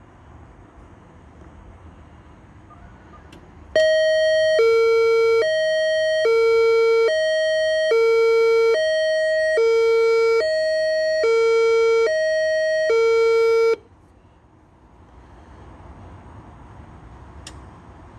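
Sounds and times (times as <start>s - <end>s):
faint outdoor noise: 0.0s - 18.1s
emergency notification system test siren blaring two-tone hi-lo pattern: 3.8s - 13.8s.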